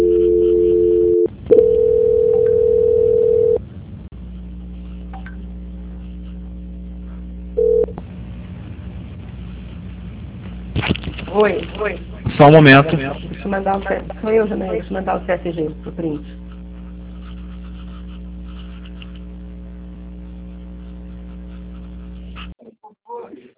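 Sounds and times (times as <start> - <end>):
telephone dial tone during a call transfer: 0.0 - 3.6, 7.6 - 7.9
low hum: 0.0 - 22.6
speech: 11.4 - 16.4.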